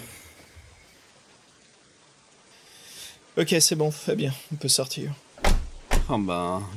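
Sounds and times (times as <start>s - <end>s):
heavy pouring rain: 0.0s - 6.7s
speech: 3.4s - 5.3s, 6.1s - 6.7s.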